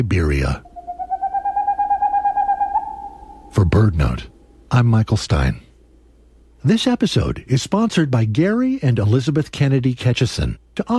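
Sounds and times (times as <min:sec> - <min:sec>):
speech: 0:00.0 - 0:00.7, 0:03.6 - 0:05.6, 0:06.6 - 0:10.9
male boreal owl hooting song: 0:00.0 - 0:04.6.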